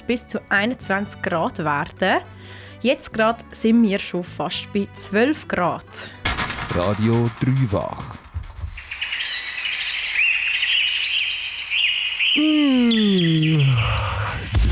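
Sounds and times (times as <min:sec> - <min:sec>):
speech: 0:00.1 - 0:08.2
several birds chirping and singing in an outdoor chorus: 0:08.4 - 0:14.6
descending groan-like call: 0:12.4 - 0:14.5.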